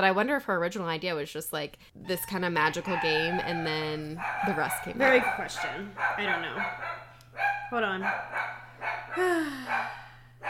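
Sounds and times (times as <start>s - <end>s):
speech: 0.0s - 10.4s
low steady hum: 0.8s - 10.4s
dog barking excitedly at someone at the door: 2.8s - 10.4s.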